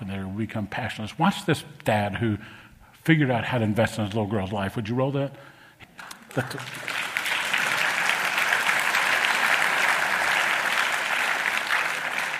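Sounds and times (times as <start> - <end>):
speech: 0.4 - 7.0
large audience applause: 6.0 - 12.3.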